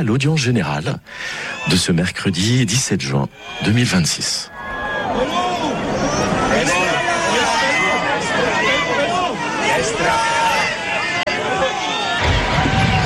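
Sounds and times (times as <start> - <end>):
speech: 0.0 - 4.6
large outdoor crowd of pilgrims cheering in a square: 1.3 - 1.9, 3.3 - 13.0
scattered shouts rising above the crowd: 3.3 - 3.8, 4.5 - 13.0.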